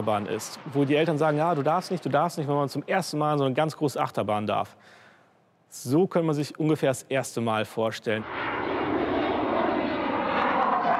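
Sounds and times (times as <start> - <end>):
fixed-wing aircraft flying low at about 500 feet during low-level flight training: 0.0 - 2.9, 8.2 - 10.9
speech: 0.0 - 5.0, 5.7 - 8.4.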